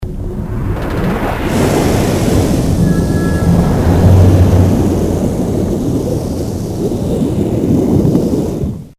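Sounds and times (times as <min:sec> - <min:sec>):
submarine departing: 0:00.0 - 0:08.9.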